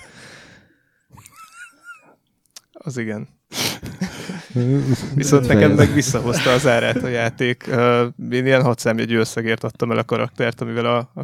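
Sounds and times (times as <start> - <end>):
speech: 2.8 - 3.9, 4.5 - 11.2
laughter: 5.7 - 7.4
hissing noise: 6.4 - 7.1.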